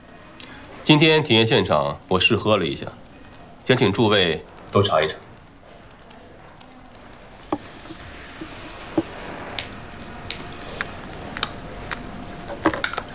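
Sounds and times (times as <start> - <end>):
steady hiss: 0.0 - 13.1
speech: 0.8 - 3.0, 3.7 - 5.2
keys clicking and scraping while prying open an oral liquid vial: 12.5 - 13.1.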